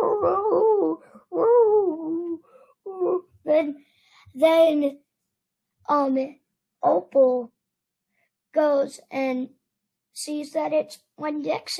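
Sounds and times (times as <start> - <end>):
person imitating a dog howling and yipping: 0.0 - 3.3
speech: 4.4 - 5.0, 5.9 - 7.5, 8.6 - 9.6, 10.2 - 11.7.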